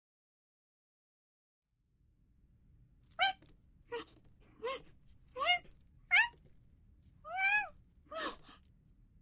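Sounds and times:
Scottish Fold cat chirping and meowing: 3.1s - 6.6s, 7.3s - 8.6s.

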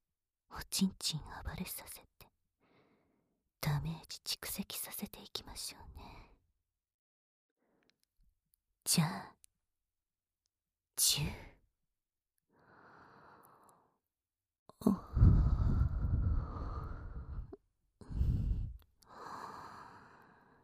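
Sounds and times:
speech: 0.7s - 2.1s, 3.7s - 6.4s, 8.9s - 9.4s, 11.0s - 11.5s
hot breathing close to the ear: 2.6s - 3.4s, 12.5s - 13.9s, 15.0s - 20.6s.

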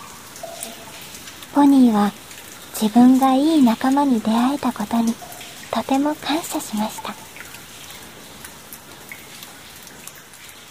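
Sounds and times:
steady rain falling: 0.0s - 10.7s
speech: 1.6s - 2.2s, 2.8s - 7.2s.

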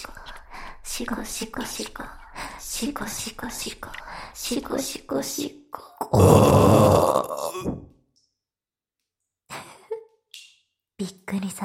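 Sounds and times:
speech: 1.0s - 7.9s, 11.0s - 11.6s
loud drawn-out burp: 6.1s - 7.9s.

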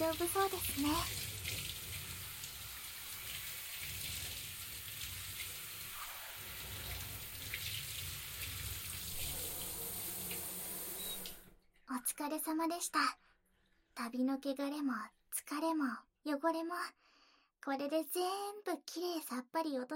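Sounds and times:
speech: 0.0s - 1.3s, 12.2s - 13.2s, 14.0s - 19.9s
shower water pouring and splashing: 0.0s - 11.5s.

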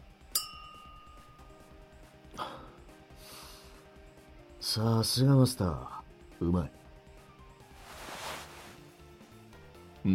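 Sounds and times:
glasses with Fuzzy Navel cocktails clinking in a toast: 0.3s - 1.5s
faint ringing tones: 0.4s - 1.9s
speech: 4.6s - 6.8s
soft shuffling: 7.6s - 9.0s.

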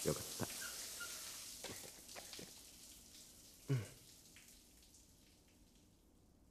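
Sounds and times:
shower water spraying while someone is washed: 0.0s - 3.3s
soft water splashes: 0.0s - 6.1s.

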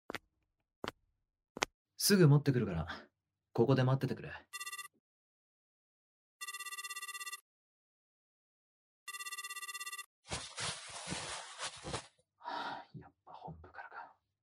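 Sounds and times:
speech: 2.0s - 4.7s
telephone ringing with bright electronic tones: 4.6s - 4.9s, 6.4s - 7.4s, 9.1s - 10.1s.

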